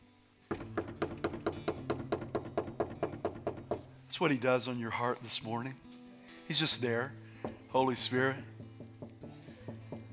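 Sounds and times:
rapid steady knocking: 0:00.5 - 0:04.0, 0:08.4 - 0:10.1
speech: 0:04.1 - 0:05.9, 0:06.5 - 0:08.5.

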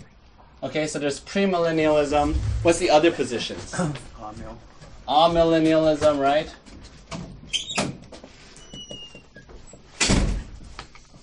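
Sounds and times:
speech: 0:00.6 - 0:06.7
door swinging and shutting with a heavy thunk: 0:10.0 - 0:10.6.

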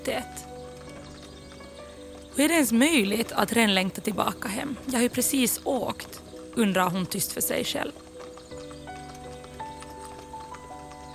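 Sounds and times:
horse hooves clip-clopping at a roadside stop where carriage horses are changed: 0:00.0 - 0:11.1
speech: 0:02.4 - 0:08.1.

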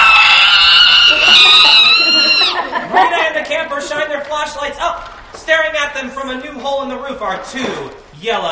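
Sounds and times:
creature screeching: 0:00.0 - 0:02.6
laughter: 0:01.1 - 0:04.2
speech: 0:03.7 - 0:08.5.

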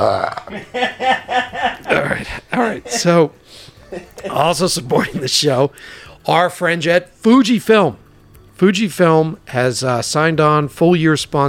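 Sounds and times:
long throaty belch: 0:00.0 - 0:00.7
speech: 0:00.0 - 0:08.0, 0:08.6 - 0:11.4
laughter: 0:00.3 - 0:03.2, 0:03.8 - 0:05.3.

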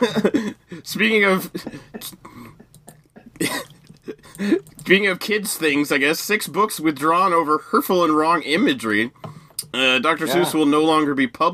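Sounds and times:
person with a small cough coughing: 0:00.0 - 0:00.6, 0:01.6 - 0:04.6
speech: 0:00.0 - 0:02.2, 0:03.4 - 0:03.6, 0:04.4 - 0:11.5.

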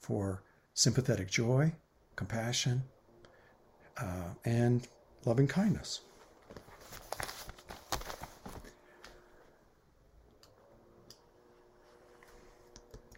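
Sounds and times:
speech: 0:00.0 - 0:03.0, 0:04.0 - 0:06.1
soft paper handling noises: 0:06.0 - 0:09.6, 0:11.5 - 0:12.9
sheets of paper shuffled in rustling bursts: 0:06.4 - 0:08.8.

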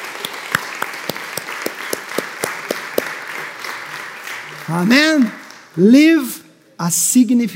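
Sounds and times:
audience applause: 0:00.0 - 0:05.8
sharp hand claps: 0:00.0 - 0:05.8
speech: 0:04.7 - 0:07.5.

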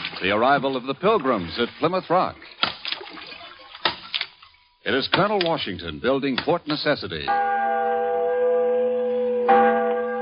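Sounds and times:
speech: 0:00.2 - 0:02.6, 0:04.8 - 0:07.6
large bell ringing: 0:07.3 - 0:10.2.

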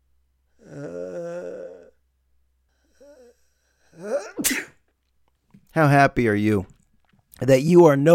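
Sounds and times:
person sneezing: 0:04.0 - 0:04.9
speech: 0:05.8 - 0:06.7, 0:07.4 - 0:08.1.

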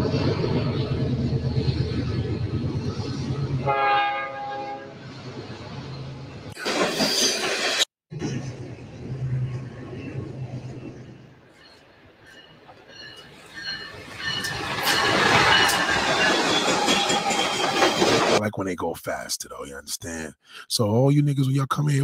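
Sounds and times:
freight train rumbling past: 0:00.0 - 0:18.4
sharp horn-like tone of a freight train: 0:03.6 - 0:05.0
speech: 0:18.8 - 0:22.0.

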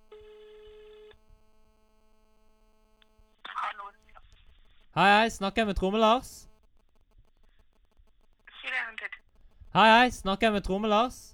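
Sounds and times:
telephone ringing tone of an outgoing call: 0:00.0 - 0:01.2
speech: 0:05.0 - 0:06.5, 0:09.8 - 0:11.3.

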